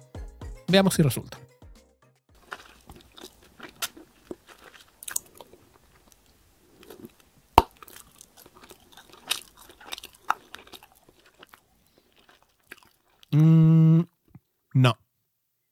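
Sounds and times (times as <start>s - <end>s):
speech: 0.7s - 1.5s
gum chewing against the microphone: 2.4s - 14.5s.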